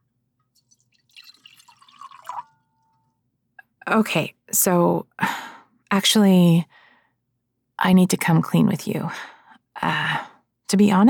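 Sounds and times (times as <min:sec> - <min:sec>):
water running and splashing in a bubbly pour: 0:00.6 - 0:02.7
speech: 0:03.9 - 0:06.8, 0:07.8 - 0:11.0.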